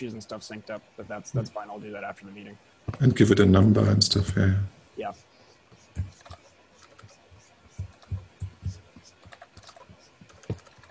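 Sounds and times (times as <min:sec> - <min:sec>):
speech: 0:00.0 - 0:05.3
typing on a computer keyboard: 0:06.0 - 0:10.8.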